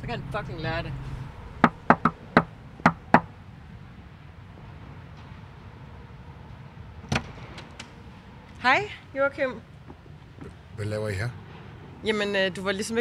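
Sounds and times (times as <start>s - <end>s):
speech: 0.0s - 1.1s, 8.6s - 9.7s, 10.8s - 11.4s, 12.0s - 12.9s
low rumble: 0.0s - 12.9s
knocking on the door of a home: 1.6s - 3.3s.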